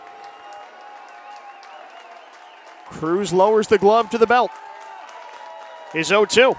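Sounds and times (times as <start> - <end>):
baseball stadium crowd cheering and clapping: 0.0 - 6.5
whistling: 0.2 - 3.1
speech: 2.9 - 4.6, 5.9 - 6.5.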